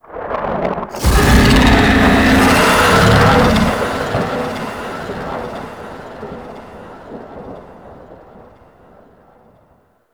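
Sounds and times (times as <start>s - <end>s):
monster bellow: 1.0s - 6.7s.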